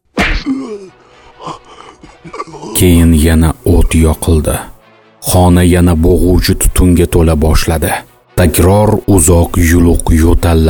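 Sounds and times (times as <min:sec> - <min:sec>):
hard punch to the face: 0:00.1 - 0:00.6
speech: 0:00.4 - 0:01.6, 0:02.8 - 0:10.6
short pained groan: 0:00.4 - 0:02.8.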